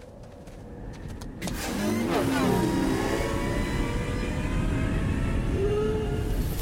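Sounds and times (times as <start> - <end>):
windy sandstorm noise: 0.0 - 6.6
sci-fi speeder bike engines roaring and whining: 1.5 - 6.2.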